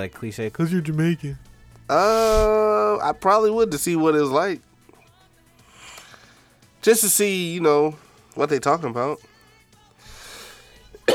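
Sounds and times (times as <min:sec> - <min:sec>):
speech: 0:00.0 - 0:04.7, 0:06.8 - 0:09.3
soft breathy exhale: 0:05.6 - 0:06.6, 0:10.0 - 0:10.8.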